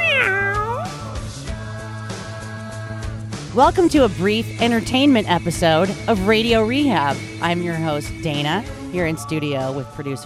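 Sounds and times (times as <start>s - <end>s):
cat meowing: 0.0s - 1.1s
speech: 3.6s - 10.2s.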